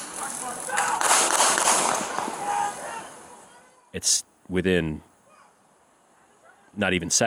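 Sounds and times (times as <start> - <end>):
gunshots from security video: 0.0 - 2.4
hiss: 0.0 - 7.2
speech: 3.9 - 5.1, 6.8 - 7.2.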